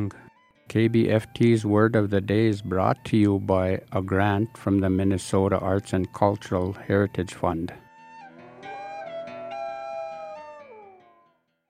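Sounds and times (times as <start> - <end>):
speech: 0.0 - 7.8
loon wail: 7.9 - 11.2.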